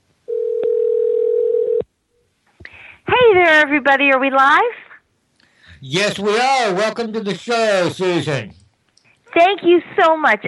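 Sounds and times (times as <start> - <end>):
telephone dial tone while placing a call: 0.3 - 1.8
speech: 3.5 - 4.8, 5.8 - 8.6, 9.4 - 10.4.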